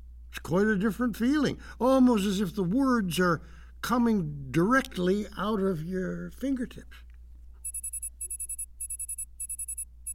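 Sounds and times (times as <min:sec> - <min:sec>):
low hum: 0:00.0 - 0:10.1
speech: 0:00.4 - 0:07.0
high-pitched electronic reminder alarm beeping: 0:07.6 - 0:10.1.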